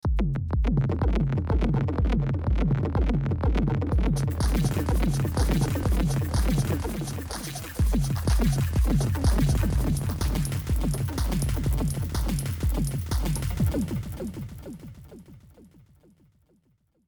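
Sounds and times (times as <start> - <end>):
drum machine: 0.0 - 15.7
synth arpeggios: 1.6 - 14.9.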